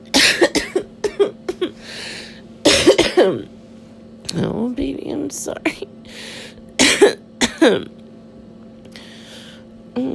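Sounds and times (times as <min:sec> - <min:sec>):
person coughing harshly with a raspy tail: 0:00.1 - 0:02.0, 0:02.6 - 0:03.5, 0:06.8 - 0:07.9
speech: 0:03.2 - 0:03.6, 0:04.3 - 0:06.4, 0:07.0 - 0:08.0.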